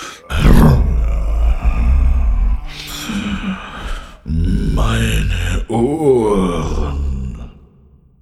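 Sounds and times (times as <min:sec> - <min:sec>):
breathy growl made by a human voice: 0:00.0 - 0:08.0
lion roar made by a human voice: 0:00.2 - 0:07.6
speech: 0:05.7 - 0:07.0.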